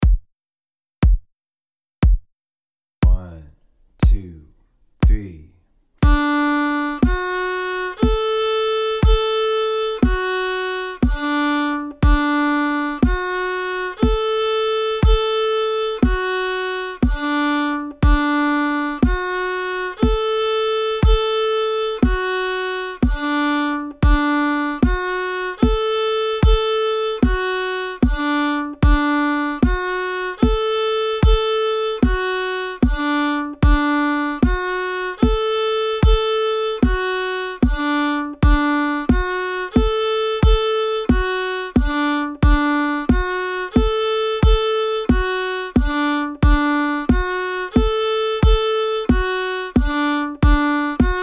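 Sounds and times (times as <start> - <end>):
fiddle playing triads: 3.0 - 4.4, 6.0 - 51.2.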